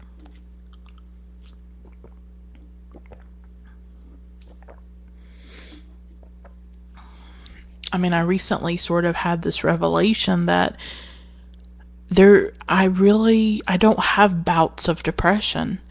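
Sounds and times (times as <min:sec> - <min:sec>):
sipping and swallowing a drink: 0:00.0 - 0:06.8
steady low electrical hum: 0:00.0 - 0:15.8
speech: 0:07.9 - 0:11.1, 0:12.2 - 0:15.8.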